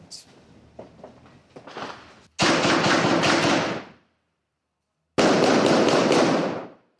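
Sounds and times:
bursts of rapid gunfire: 2.4s - 3.9s, 5.2s - 6.8s.

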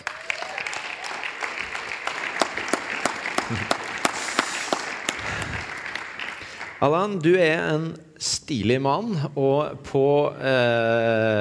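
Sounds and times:
fairly large audience applauding: 0.0s - 7.2s
laughter: 3.3s - 4.6s
speech: 3.5s - 3.8s, 6.8s - 11.3s.

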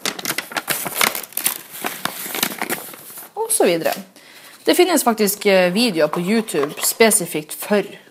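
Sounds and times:
paper being crumpled: 0.0s - 4.0s
speech: 3.6s - 4.1s, 4.7s - 8.0s.

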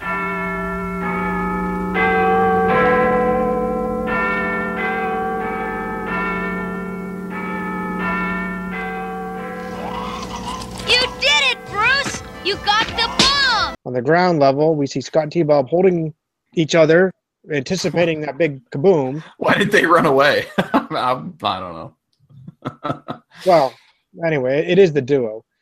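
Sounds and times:
Big Ben clock tower bell clanging: 0.0s - 13.8s
speech: 14.0s - 22.0s, 22.6s - 25.5s
laughter: 19.1s - 21.2s, 22.4s - 23.8s.

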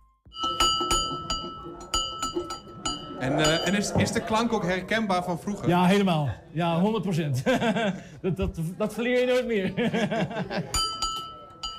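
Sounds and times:
old school bell ringing: 0.3s - 4.0s
laughter: 3.1s - 5.8s, 7.2s - 10.9s
speech: 3.2s - 10.9s.

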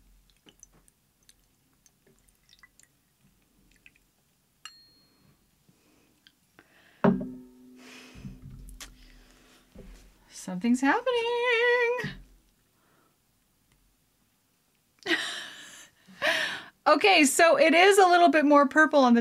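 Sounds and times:
quiet small drips: 0.0s - 4.4s
liquor poured over a spoon into a cocktail in a glass: 0.2s - 4.1s
clink: 4.6s - 5.4s, 7.0s - 7.7s
speech: 10.4s - 11.4s, 17.0s - 19.1s.

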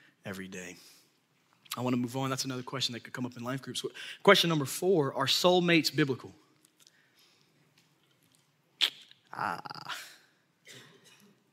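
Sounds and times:
speech: 0.2s - 1.0s, 1.8s - 6.4s, 9.4s - 10.1s
person coughing: 10.7s - 11.3s.

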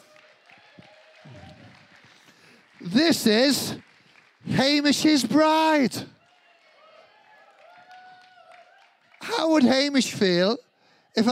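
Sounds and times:
audience applause: 0.0s - 10.1s
speech: 2.8s - 3.9s, 4.5s - 6.2s, 9.5s - 11.3s.

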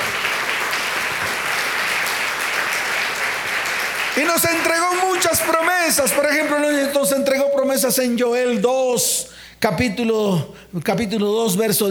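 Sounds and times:
congregation applauding: 0.0s - 7.1s
speech: 4.2s - 11.9s.

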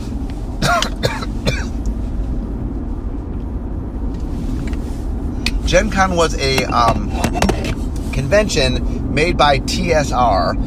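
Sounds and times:
low steady rumble of noise: 0.0s - 10.6s
person coughing: 0.6s - 1.8s
speech: 5.7s - 7.5s, 8.2s - 10.6s.

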